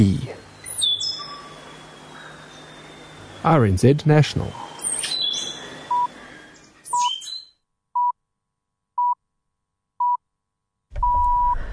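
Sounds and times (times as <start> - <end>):
speech: 0.0 - 0.3, 3.4 - 4.6
faint hum: 0.0 - 7.5, 11.0 - 11.7
stitchbird call: 0.6 - 3.5, 4.5 - 7.6.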